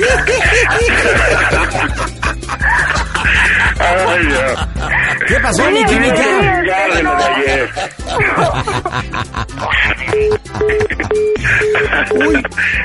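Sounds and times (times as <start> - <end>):
laughter: 0.0 - 12.6
speech: 5.3 - 11.2
phone line tone beeps after call hung up: 10.1 - 12.4.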